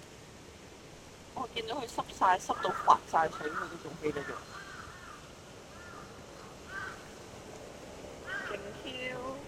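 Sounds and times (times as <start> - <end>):
speech: 1.6 - 4.6
crows cawing: 2.4 - 7.3, 8.2 - 8.8.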